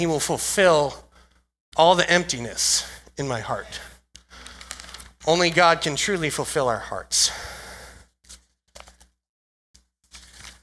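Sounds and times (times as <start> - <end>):
speech: 0.0 - 1.0, 1.8 - 3.9, 5.2 - 7.6
paper rustling: 4.4 - 5.2, 8.3 - 9.1, 10.0 - 10.6.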